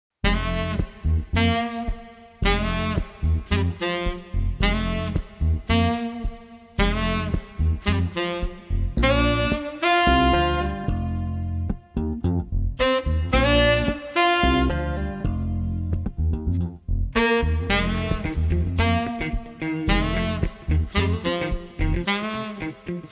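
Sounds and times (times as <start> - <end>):
street saxophone combo playing funky soul without drums: 0.2 - 23.1.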